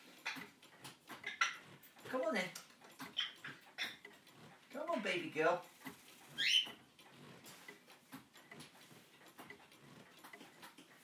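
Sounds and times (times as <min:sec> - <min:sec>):
pet bird claws scratching on cage wires: 0:00.2 - 0:11.0
speech: 0:02.1 - 0:02.6, 0:05.0 - 0:05.7, 0:06.4 - 0:06.8
pet bird chirp: 0:03.1 - 0:04.0, 0:06.3 - 0:06.8.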